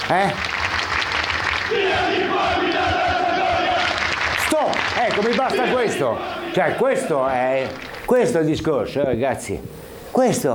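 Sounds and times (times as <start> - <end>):
steady crowd roar: 0.0 - 8.4
speech: 0.1 - 0.5, 1.7 - 3.0, 4.6 - 10.5
large crowd of football supporters chanting in protest: 1.5 - 8.0.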